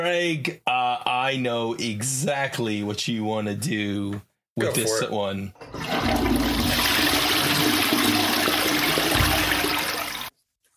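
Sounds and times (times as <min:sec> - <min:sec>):
speech: 0:00.0 - 0:06.5
toilet flushing: 0:05.6 - 0:10.3.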